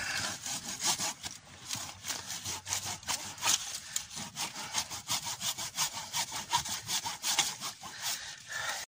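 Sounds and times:
hacksaw sawing through wood: 0.0s - 8.8s.

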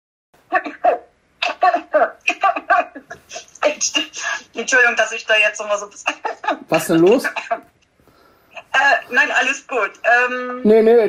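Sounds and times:
woman producing forced exaggerated coughs: 0.5s - 4.5s, 7.3s - 7.7s
speech: 4.6s - 7.6s, 9.1s - 11.0s.

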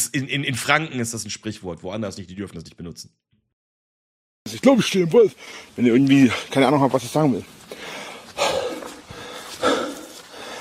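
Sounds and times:
speech: 0.1s - 3.4s, 4.5s - 8.5s
heavy breathy exhales: 7.8s - 10.6s.

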